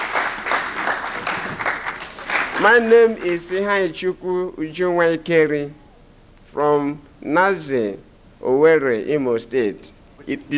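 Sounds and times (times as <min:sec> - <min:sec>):
audience applauding at an evening gathering: 0:00.0 - 0:03.8
speech: 0:02.6 - 0:05.8, 0:06.5 - 0:10.5.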